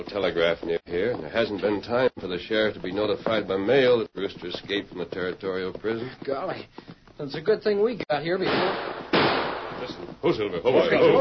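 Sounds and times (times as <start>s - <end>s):
speech: 0.0s - 9.0s, 9.9s - 11.1s
rifle shots fired from behind a ridge: 8.4s - 10.0s.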